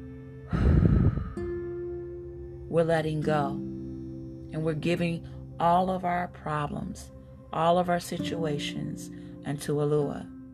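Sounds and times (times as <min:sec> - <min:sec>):
low sustained tone: 0:00.0 - 0:10.5
deep exhale during a guided breathing exercise: 0:00.5 - 0:01.5
speech: 0:02.7 - 0:03.7, 0:04.5 - 0:10.3.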